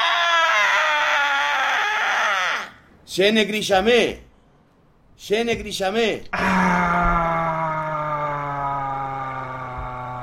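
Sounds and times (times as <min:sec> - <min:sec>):
long high-pitched human cry: 0:00.0 - 0:02.8, 0:06.4 - 0:10.2
speech: 0:03.2 - 0:04.3, 0:05.2 - 0:06.8.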